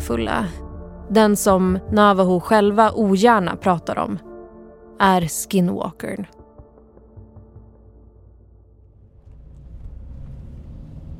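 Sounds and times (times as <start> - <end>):
speech: 0.1 - 4.3, 5.0 - 6.4
car engine droning inside a moving car: 8.5 - 11.1
car road noise: 8.9 - 11.1.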